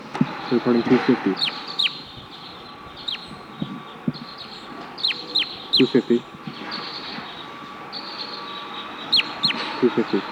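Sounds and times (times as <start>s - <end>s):
steady noise: 0.0s - 10.3s
wild birds giving short high downward-sweeping chirps: 0.0s - 10.3s
speech: 0.5s - 1.7s, 5.8s - 6.4s, 9.8s - 10.3s
soft low thumps: 3.6s - 4.3s.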